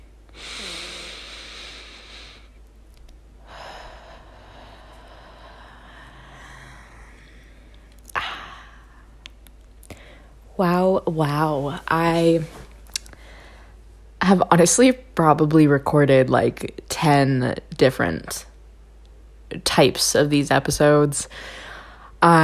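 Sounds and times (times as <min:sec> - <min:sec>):
slow deep breath during a guided breathing moment: 0:00.3 - 0:02.6, 0:03.4 - 0:09.2, 0:09.9 - 0:10.4, 0:13.1 - 0:13.8, 0:21.3 - 0:22.2
faint clicks: 0:02.6 - 0:03.2
speech: 0:10.6 - 0:12.6, 0:14.3 - 0:18.5, 0:19.5 - 0:21.6, 0:22.2 - 0:22.4.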